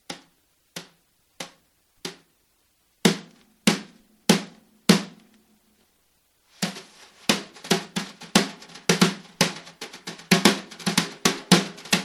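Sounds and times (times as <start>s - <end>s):
brushes tapping: 0.1s - 2.3s, 6.6s - 12.0s.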